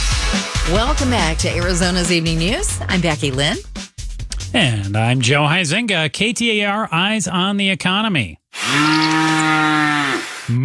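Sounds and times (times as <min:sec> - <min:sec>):
speech: 0:00.7 - 0:03.8, 0:04.5 - 0:09.3, 0:10.5 - 0:10.6
cow mooing: 0:08.6 - 0:10.4.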